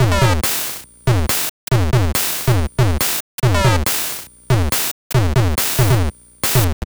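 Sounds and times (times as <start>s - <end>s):
drums: 0.0s - 6.8s.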